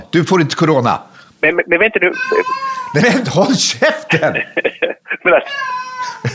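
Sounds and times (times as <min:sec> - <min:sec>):
speech: 0:00.1 - 0:06.3
cat meowing: 0:02.1 - 0:03.1, 0:05.4 - 0:06.3
laughter: 0:03.0 - 0:06.3.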